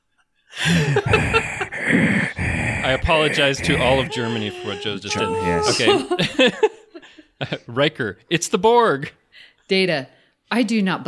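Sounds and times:
voice imitating heavy rasping breathing: 0.6 - 6.0
laughter: 0.6 - 8.1
speech: 0.7 - 1.4, 2.9 - 6.8, 7.4 - 11.0.

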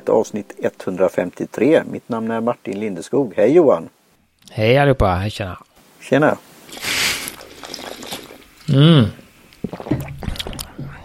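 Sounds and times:
speech: 0.0 - 6.9, 8.7 - 10.0
slurping sip of water to cleanse the palate: 6.7 - 11.0
person giving an appreciative hum: 8.7 - 9.2.

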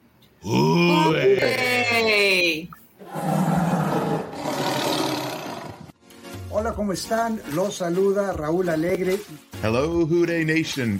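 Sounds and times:
speech: 0.4 - 1.6, 6.9 - 10.9
several voices imitating a big cat's growling roar as farewell: 0.4 - 2.1, 3.0 - 5.9.

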